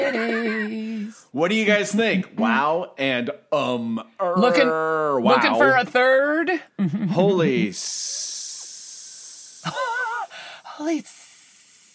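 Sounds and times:
speech: 1.3 - 8.2, 10.8 - 11.2
person imitating a snake with a long hiss: 7.8 - 11.9.

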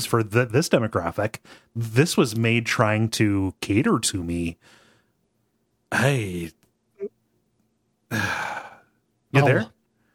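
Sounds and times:
speech: 0.0 - 4.8, 5.9 - 7.1, 8.1 - 8.6, 9.3 - 9.8
big drawn-out voiced groaning yawn: 8.1 - 8.9.

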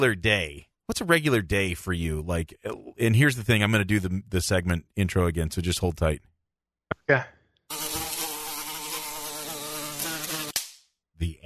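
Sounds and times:
speech: 0.0 - 6.3, 7.0 - 7.8, 11.2 - 11.4
housefly buzzing sound effect: 7.7 - 10.7.

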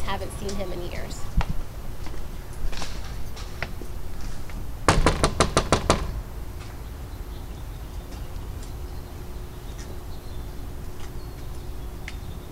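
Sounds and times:
quiet outdoor ambience: 0.0 - 12.4
speech: 0.1 - 1.5
firm sharp knocks on a front door: 4.9 - 6.2.

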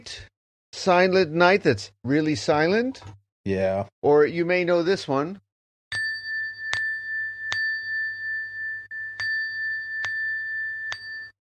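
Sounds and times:
speech: 0.0 - 5.4
meditation bell struck to start Zazen: 5.9 - 11.3.

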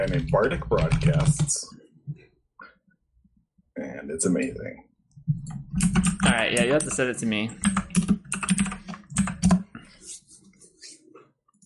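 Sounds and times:
computer keyboard typing clicks: 0.0 - 1.6, 5.4 - 9.8
speech: 0.0 - 1.8, 4.0 - 4.9, 5.5 - 7.8.

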